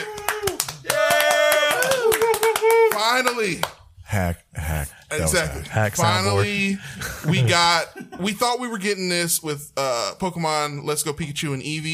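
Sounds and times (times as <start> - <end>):
sustained voice or cheer: 0.0 - 3.3
brisk hand clapping: 0.0 - 3.8
speech: 3.2 - 11.9.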